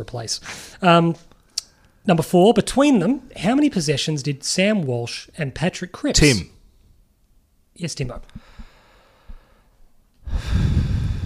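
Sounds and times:
speech: 0:00.0 - 0:01.3, 0:02.0 - 0:06.6, 0:07.8 - 0:08.5
heavy breathing into the microphone: 0:08.4 - 0:11.2.

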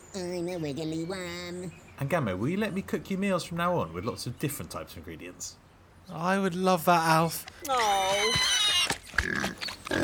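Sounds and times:
speech: 0:00.2 - 0:10.0
pig on a farm oinking and squealing: 0:07.7 - 0:10.0.

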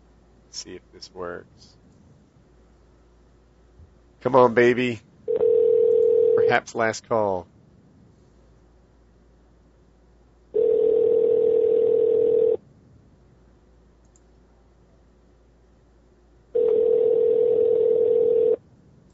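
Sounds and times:
speech: 0:00.5 - 0:01.8, 0:04.2 - 0:05.1, 0:06.4 - 0:07.5
telephone ringback tones over the line while placing a call: 0:05.3 - 0:06.6, 0:10.6 - 0:12.6, 0:16.6 - 0:18.6.

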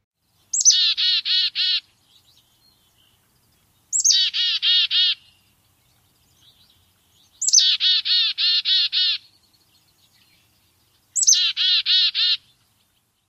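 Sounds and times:
black-capped chickadee chick-a-dee call: 0:00.6 - 0:01.9, 0:04.0 - 0:05.3, 0:07.4 - 0:09.2, 0:11.2 - 0:12.4.

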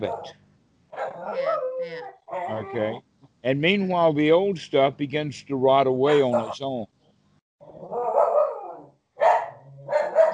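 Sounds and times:
speech: 0:00.0 - 0:00.4, 0:01.2 - 0:07.0
female puppy barking: 0:00.0 - 0:02.6, 0:06.1 - 0:06.6, 0:07.8 - 0:10.3.

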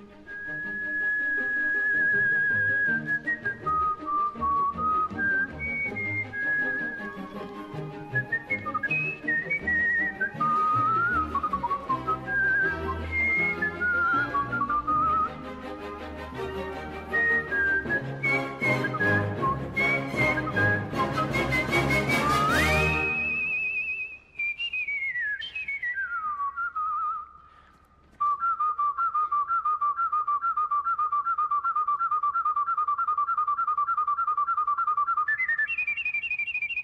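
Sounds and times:
melodic whistled tune with operatic vibrato: 0:00.1 - 0:36.8
full instrumental accompaniment: 0:04.1 - 0:23.5.

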